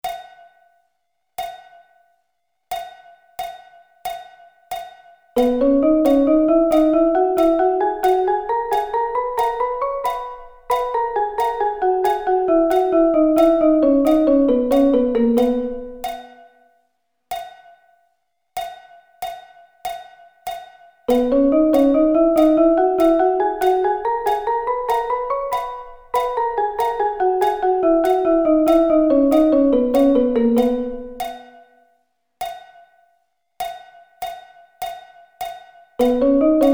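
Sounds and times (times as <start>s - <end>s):
drum double sticking: 5.4s - 16.4s, 21.1s - 31.5s.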